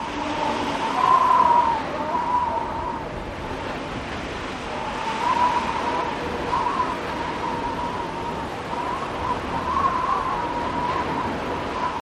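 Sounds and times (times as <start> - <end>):
wind: 0.0 - 11.9.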